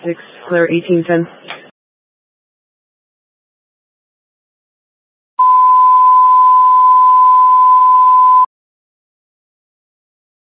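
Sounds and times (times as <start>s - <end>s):
speech: 0.0s - 1.5s
fire department radio alert test tone: 5.4s - 8.5s.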